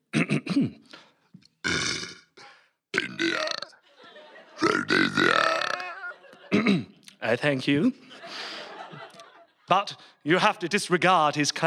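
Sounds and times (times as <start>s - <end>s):
speech: 0.6s - 1.0s, 6.7s - 8.2s, 9.7s - 11.6s
man belching: 1.6s - 3.8s, 4.6s - 7.0s
laughter: 3.8s - 7.0s, 7.8s - 10.0s.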